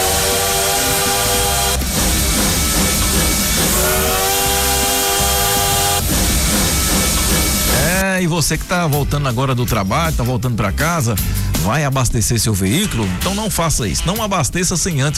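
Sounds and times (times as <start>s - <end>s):
whining tones of high-speed train: 0.0s - 8.0s
speech: 8.4s - 15.1s.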